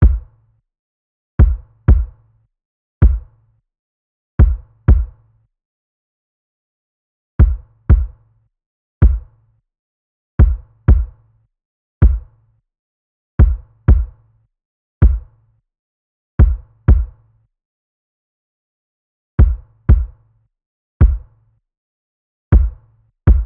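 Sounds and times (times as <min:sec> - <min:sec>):
kick drum loop at 80 BPM: 0:00.0 - 0:00.3, 0:01.4 - 0:02.1, 0:03.0 - 0:03.2, 0:04.4 - 0:05.1, 0:07.4 - 0:08.2, 0:09.0 - 0:09.2, 0:10.4 - 0:11.1, 0:12.0 - 0:12.2, 0:13.4 - 0:14.1, 0:15.0 - 0:15.2, 0:16.4 - 0:17.1, 0:19.4 - 0:20.2, 0:21.0 - 0:21.2, 0:22.5 - 0:23.4.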